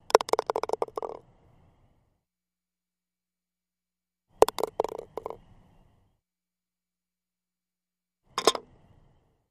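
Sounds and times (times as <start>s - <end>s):
golf ball dropping into cup: 0.0s - 1.2s, 4.4s - 5.4s.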